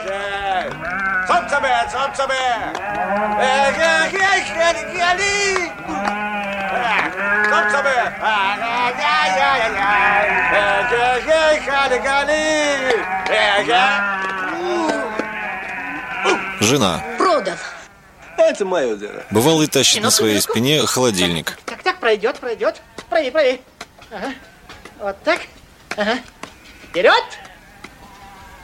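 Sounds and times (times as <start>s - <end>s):
rams bleating as they are driven into a yard: 0.0s - 21.8s, 22.4s - 28.6s
speech: 0.1s - 15.2s, 16.2s - 17.7s, 18.5s - 27.4s.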